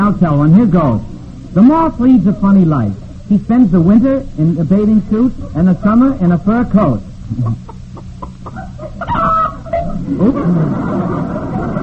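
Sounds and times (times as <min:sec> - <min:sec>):
speech: 0:00.0 - 0:07.8, 0:10.1 - 0:11.4
low rumbling background: 0:00.0 - 0:11.8
hen cackling after laying an egg: 0:07.3 - 0:11.8.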